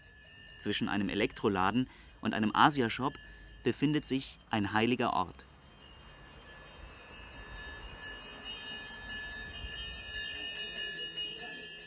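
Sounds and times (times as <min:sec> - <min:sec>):
temple bells struck by hand at a Tamil Hindu temple door in Berlin-Kreuzberg: 0:00.0 - 0:11.8
speech: 0:00.6 - 0:05.5
murmur: 0:08.7 - 0:11.8.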